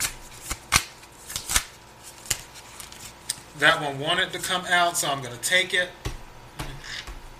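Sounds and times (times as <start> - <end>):
playing cards being shuffled and handled during a card trick: 0.0 - 3.4
speech: 3.6 - 6.0.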